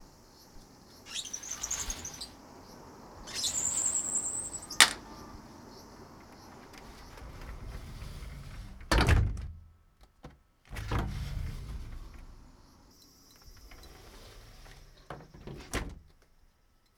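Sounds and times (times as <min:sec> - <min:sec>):
cicadas: 0:00.0 - 0:08.6, 0:11.0 - 0:16.4
screen door and window opening: 0:00.0 - 0:16.8
cars: 0:02.3 - 0:06.8.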